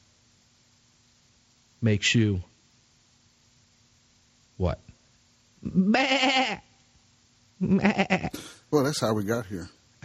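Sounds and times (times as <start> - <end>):
speech: 1.8 - 2.5, 4.6 - 4.9, 5.6 - 6.7, 7.6 - 10.0
sheep bleating: 5.8 - 6.6, 7.7 - 8.4.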